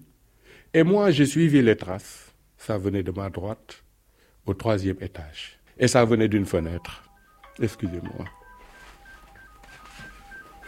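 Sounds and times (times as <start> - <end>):
soft hiss: 0.0 - 10.6
speech: 0.7 - 3.8, 4.5 - 7.0, 7.6 - 8.4
short electronic telephone beeps as a call is answered: 6.5 - 10.6.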